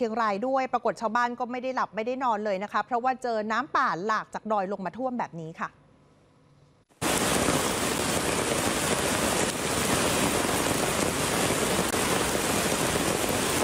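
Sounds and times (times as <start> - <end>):
speech: 0.0 - 5.8
heavy rain falling: 7.0 - 13.6.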